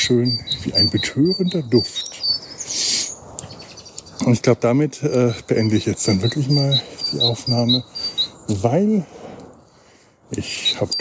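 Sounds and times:
speech: 0.0s - 2.4s, 4.2s - 9.2s, 10.3s - 10.9s
birds singing outdoors: 0.0s - 10.9s.

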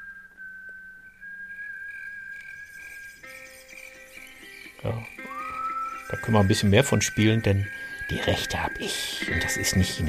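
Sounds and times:
sustained whistle in a self-produced series intro: 0.0s - 3.9s, 5.2s - 10.0s
soft musical backing with chord of instruments: 2.7s - 10.0s
speech: 4.8s - 5.2s, 6.1s - 10.0s.

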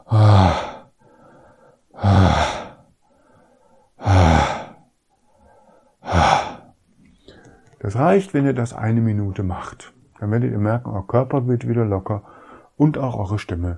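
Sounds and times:
deep breathing during slumped relaxation exercise: 0.0s - 7.8s, 12.2s - 12.8s
speech: 7.9s - 13.7s.

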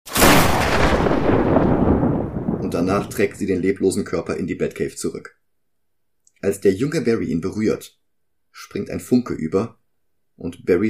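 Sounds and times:
loud thunderclap: 0.1s - 3.8s
speech: 2.7s - 5.4s, 6.4s - 8.0s, 8.6s - 9.8s, 10.4s - 10.8s.

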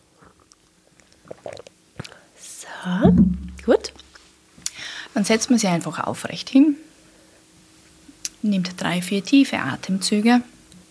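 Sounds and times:
person taking a quick sip of water: 0.2s - 2.2s
small gulp of water: 0.2s - 2.2s
soft mouth noises: 0.2s - 2.2s
speech: 2.8s - 4.0s, 5.2s - 6.8s, 8.4s - 10.5s.

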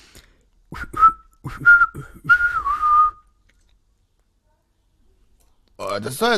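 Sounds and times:
person whistling in imitation of a bird call: 0.7s - 3.4s
speech: 1.5s - 2.1s, 6.0s - 6.3s.

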